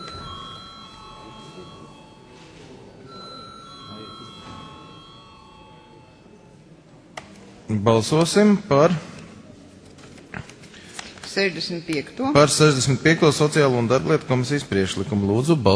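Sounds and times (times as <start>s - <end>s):
parliament chamber bell ringing for a vote: 0.0s - 6.6s
murmur of voices in a parliament chamber: 0.0s - 15.7s
speech: 7.7s - 9.1s, 11.4s - 15.7s.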